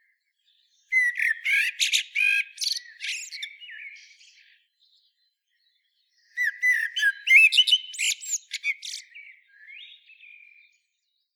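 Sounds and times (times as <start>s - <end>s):
common blackbird Turdus merula song: 0.9s - 4.0s, 6.4s - 10.0s.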